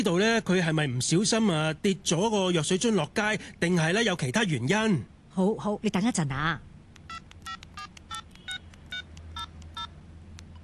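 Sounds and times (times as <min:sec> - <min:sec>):
speech: 0:00.0 - 0:07.2
low steady hum: 0:00.0 - 0:10.6
telephone keypad tones as a nurse dials a phone: 0:07.1 - 0:10.6.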